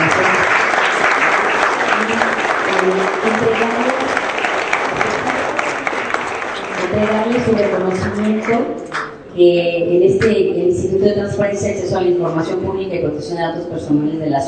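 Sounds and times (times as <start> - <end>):
audience applause: 0.0 - 9.0
speech: 7.5 - 14.4.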